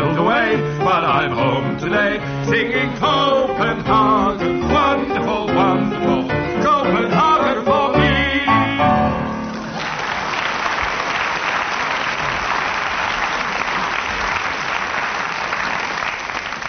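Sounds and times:
music: 0:00.0 - 0:09.8
speech: 0:01.3 - 0:04.4
audience applause: 0:09.4 - 0:16.6.

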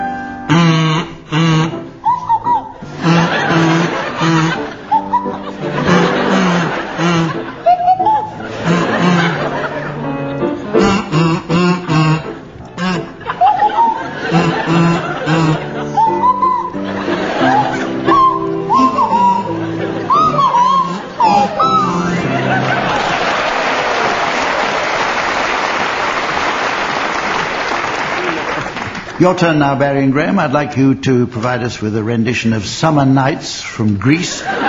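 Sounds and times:
buzzy kazoo playing a wobbly tune: 0:00.2 - 0:09.9, 0:10.7 - 0:22.9
audience laughing: 0:02.8 - 0:26.5, 0:34.3 - 0:34.6
applause: 0:22.6 - 0:29.2
speech: 0:29.2 - 0:34.6.

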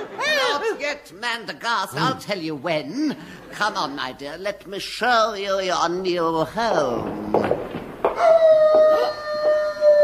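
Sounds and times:
speech: 0:00.9 - 0:07.4, 0:08.2 - 0:08.9
wolf howl: 0:08.2 - 0:10.0.

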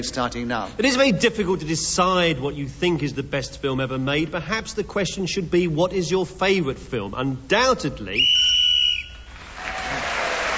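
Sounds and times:
speech: 0:00.0 - 0:08.4
short shrill whistle blown to end a timed speaking turn in a panel game: 0:08.1 - 0:09.3
applause: 0:09.4 - 0:10.5.

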